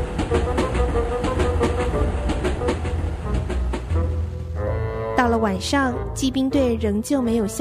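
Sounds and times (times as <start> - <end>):
wheels clickety-clack over track joints: 0.0 - 4.0
train rolling along the rails with heavy low rumble: 0.0 - 4.9
speech: 5.2 - 7.5.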